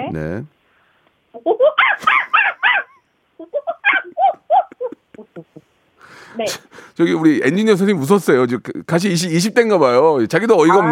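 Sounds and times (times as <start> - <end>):
speech: 0.1 - 0.6, 1.3 - 2.5, 5.3 - 10.9
female university student mimicking leader monkey calls: 1.3 - 5.6, 10.7 - 10.9.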